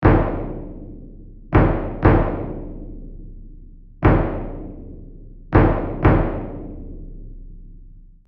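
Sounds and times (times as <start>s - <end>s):
bass drum playing a simple rhythm: 0.0s - 3.4s, 4.0s - 7.2s.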